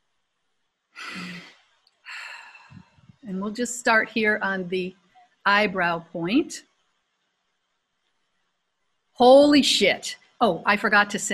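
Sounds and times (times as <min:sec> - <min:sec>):
deep breath: 0:01.0 - 0:01.5, 0:02.1 - 0:03.2
speech: 0:03.3 - 0:06.7, 0:09.2 - 0:11.3.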